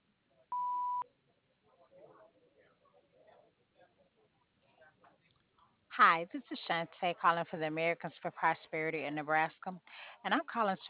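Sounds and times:
electronic answering machine beep: 0.5s - 1.0s
speech: 6.0s - 10.8s.

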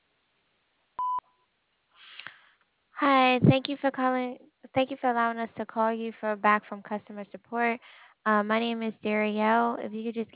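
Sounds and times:
answering machine beep: 1.0s - 1.2s
speech: 3.0s - 10.3s.

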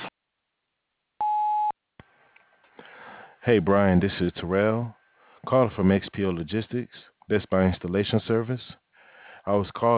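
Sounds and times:
voicemail beep: 1.2s - 1.8s
speech: 3.4s - 8.8s, 9.5s - 9.9s.

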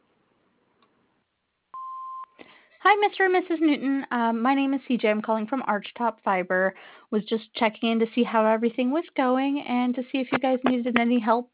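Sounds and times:
answering machine beep: 1.8s - 2.3s
speech: 2.8s - 11.5s.

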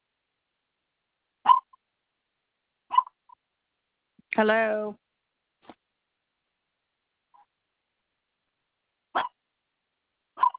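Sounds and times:
dog barking: 1.5s - 1.7s, 2.9s - 3.2s, 9.1s - 9.4s, 10.4s - 10.5s
speech: 4.4s - 5.0s.

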